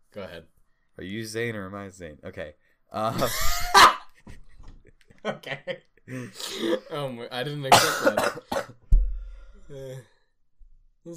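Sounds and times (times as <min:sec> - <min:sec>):
speech: 0:00.2 - 0:03.7, 0:05.2 - 0:08.8, 0:09.7 - 0:10.1
sharp cough: 0:07.7 - 0:08.8.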